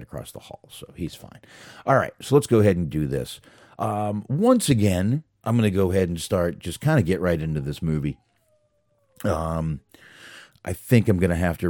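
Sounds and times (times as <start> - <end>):
speech: 0.0 - 8.2, 9.2 - 11.6
dog whining to be let into the room: 7.8 - 9.4.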